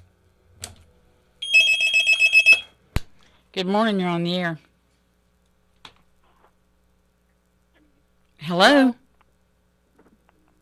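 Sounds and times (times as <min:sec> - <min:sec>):
telephone ringing with a rapid electronic trill: 0:01.4 - 0:02.7
speech: 0:03.6 - 0:04.7, 0:08.6 - 0:09.0.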